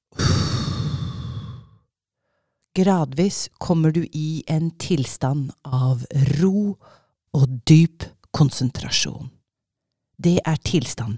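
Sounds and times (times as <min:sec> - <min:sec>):
slow breathy meditation exhale: 0:00.1 - 0:02.6, 0:06.8 - 0:07.2
speech: 0:02.8 - 0:09.4, 0:10.2 - 0:11.1.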